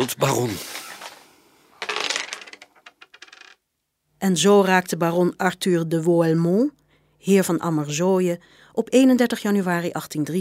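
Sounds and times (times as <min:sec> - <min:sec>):
speech: 0:00.0 - 0:00.8, 0:04.2 - 0:10.3
dice cup slamming down onto a hard table: 0:01.8 - 0:03.6.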